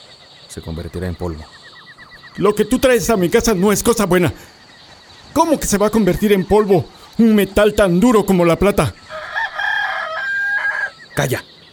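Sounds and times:
speech: 0.5s - 1.6s, 2.4s - 4.5s, 5.4s - 9.0s, 11.2s - 11.5s
rooster crowing: 9.0s - 11.0s.

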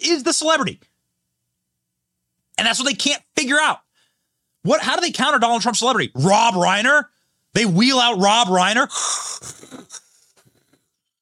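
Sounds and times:
speech: 0.0s - 0.9s, 2.6s - 3.8s, 4.6s - 10.0s
voice imitating a breathing machine wheeze: 8.9s - 10.2s.

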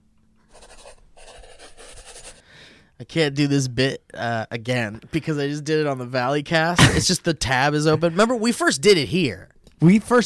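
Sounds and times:
handwriting scratching: 0.5s - 2.4s
speech: 3.0s - 10.2s.

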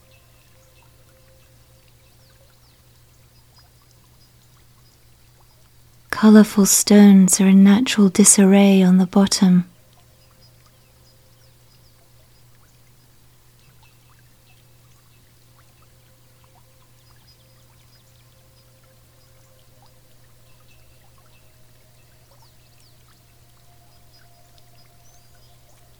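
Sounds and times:
low steady hum: 0.0s - 25.9s
spring water flowing and trickling into an ice-cold pool: 0.0s - 25.9s
speech: 6.2s - 9.7s.

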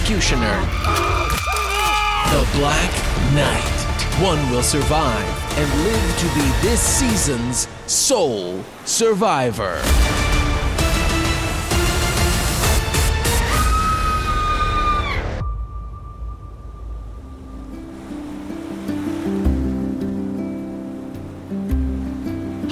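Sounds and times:
speech: 0.1s - 1.2s, 2.3s - 10.2s
crashing ocean waves: 2.2s - 13.3s, 16.1s - 22.6s
low pulsing music: 2.3s - 8.8s, 9.8s - 22.6s
sustained tone: 15.4s - 18.7s.

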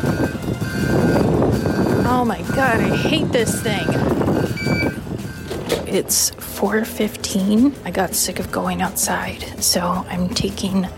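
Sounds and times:
wind buffeting the microphone outdoors: 0.0s - 6.7s
speech: 2.2s - 4.8s, 5.9s - 10.9s.

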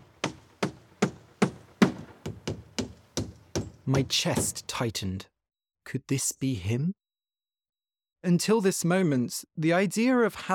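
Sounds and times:
hammer blows: 0.0s - 4.7s
speech: 3.9s - 5.3s, 5.9s - 7.0s, 8.2s - 10.5s.

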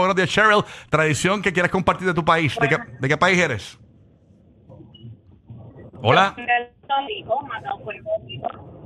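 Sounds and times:
speech: 0.0s - 3.8s, 6.0s - 8.8s
muffled distorted caller voice through a phone line on speaker or Bluetooth: 2.6s - 3.0s, 5.5s - 8.6s.

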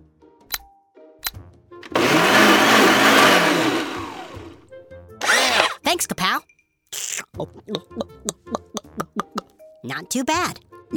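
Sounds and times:
blender sharp clicks: 0.5s - 1.4s
blender motor roaring through a smoothie: 1.8s - 4.6s, 5.2s - 5.8s
speech: 7.4s - 8.1s, 10.0s - 10.9s.

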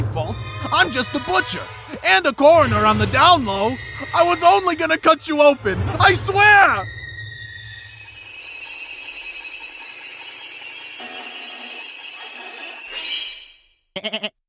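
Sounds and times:
speech: 0.3s - 7.0s, 14.0s - 14.3s
goat bleating: 14.0s - 14.4s.

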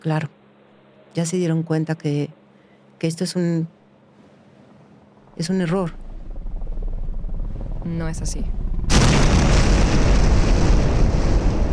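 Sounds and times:
speech: 0.0s - 0.4s, 1.2s - 2.4s, 3.0s - 3.8s, 5.4s - 6.0s, 7.9s - 8.6s
loud deep roaring rumble: 5.2s - 11.7s
missile explosion: 8.9s - 11.7s.

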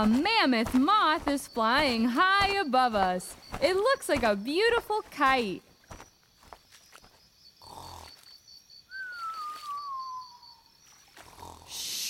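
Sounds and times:
speech: 0.0s - 5.7s
cartoonish snore of a giant sloth napping: 7.6s - 8.2s, 11.2s - 12.0s.

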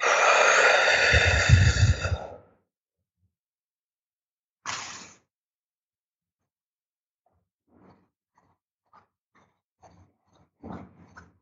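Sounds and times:
forceful exhale from a breathing exercise: 0.0s - 2.4s.

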